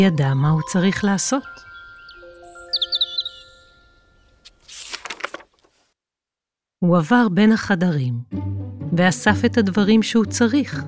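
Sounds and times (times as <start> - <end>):
speech: 0.0 - 1.7, 6.8 - 10.8
birds chirping: 0.3 - 4.5
rustling patter: 4.5 - 5.9.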